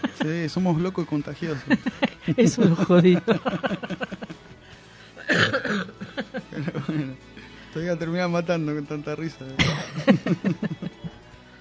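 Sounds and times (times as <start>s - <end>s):
laughter: 0.0s - 0.8s, 1.4s - 4.5s, 5.3s - 7.2s, 9.6s - 11.3s
speech: 0.2s - 4.4s, 5.3s - 10.8s
person coughing in a coughing fit: 5.2s - 6.2s, 9.6s - 10.1s.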